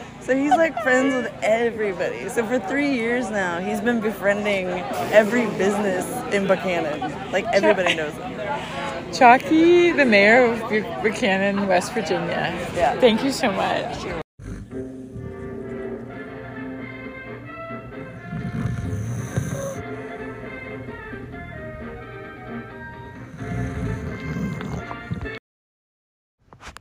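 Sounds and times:
laughter: 0.0 - 1.7, 4.8 - 12.3
speech: 0.2 - 14.2
person snoring while watching a western film: 14.4 - 15.4, 18.0 - 20.2, 23.0 - 25.4.

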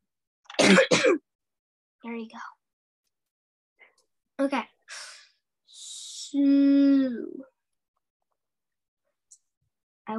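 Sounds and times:
person coughing: 0.5 - 1.2
speech: 0.7 - 1.2, 2.0 - 2.6, 4.4 - 4.7, 6.3 - 7.5.

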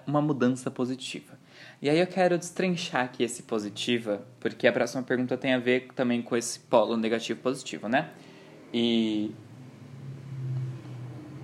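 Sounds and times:
speech: 0.1 - 9.4
motorcycle engine passing by outside: 8.3 - 11.4.

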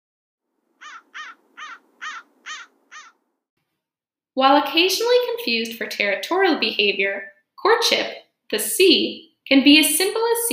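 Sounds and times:
American crow cawing: 0.8 - 3.2
speech: 4.4 - 10.5.

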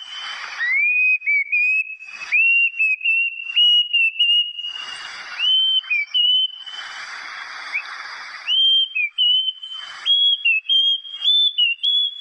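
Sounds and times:
plaintive cuckoo giving clear slurred whistles: 0.0 - 12.1
rustling hiss: 4.6 - 10.6.

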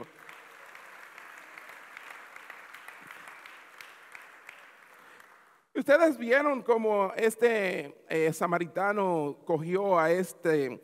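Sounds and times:
audience applause: 0.0 - 5.6
speech: 5.8 - 10.8.

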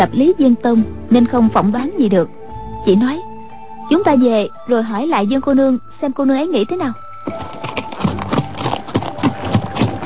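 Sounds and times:
speech: 0.0 - 3.3, 3.9 - 7.6
horse hooves galloping on a road: 7.2 - 10.0.

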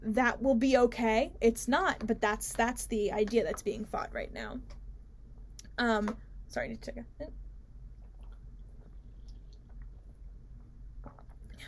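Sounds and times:
speech: 0.0 - 4.8, 5.8 - 7.4
low steady hum: 0.0 - 11.6
person drinking water: 7.9 - 11.6.

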